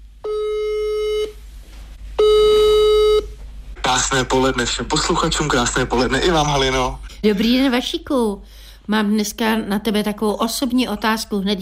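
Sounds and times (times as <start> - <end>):
low constant hum: 0.0 - 11.5
telephone ringing tone on an outgoing call: 2.2 - 3.3
speech: 3.9 - 11.5.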